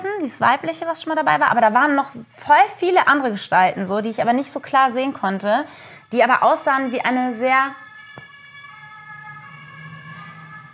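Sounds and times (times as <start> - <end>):
speech: 0.2 - 7.8
emergency vehicle siren wailing: 5.8 - 10.7.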